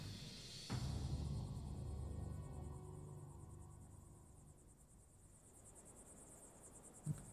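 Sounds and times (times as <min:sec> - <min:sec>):
crickets chirping at night: 0:00.0 - 0:07.3
low ambient rumble: 0:00.0 - 0:07.3.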